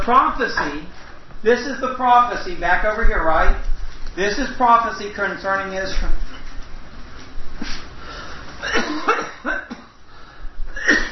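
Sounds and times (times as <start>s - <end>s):
speech: 0.0s - 6.2s, 8.6s - 9.6s
person coughing in a harsh fit: 0.5s - 0.9s, 8.6s - 10.0s, 10.7s - 11.1s.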